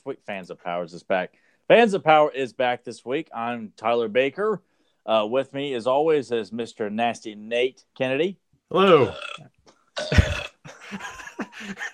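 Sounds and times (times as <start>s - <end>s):
speech: 0.0s - 11.9s
loud raspy belch: 8.7s - 10.6s
laughter: 10.7s - 11.9s.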